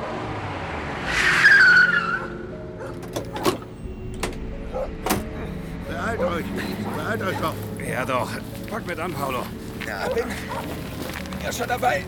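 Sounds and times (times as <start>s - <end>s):
approaching car skidding with tire squeal on a city street: 0.7s - 3.5s
car engine rumble: 2.8s - 12.0s
sharp clunks: 3.0s - 5.6s
speech: 6.4s - 12.0s.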